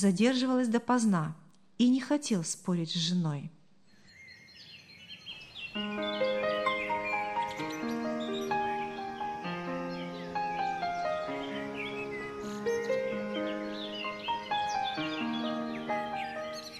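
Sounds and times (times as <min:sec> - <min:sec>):
speech: 0:00.0 - 0:03.6
fresh wind: 0:03.8 - 0:16.7
morning birdsong through a window: 0:03.8 - 0:16.7
sustained chord-like musical tones: 0:05.8 - 0:16.7.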